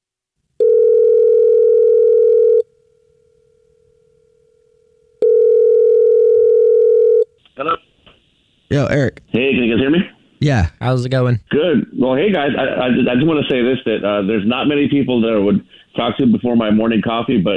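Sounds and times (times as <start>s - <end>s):
long steady telephone ringing tones: 0.6s - 2.6s, 5.2s - 7.2s
speech: 8.7s - 17.5s.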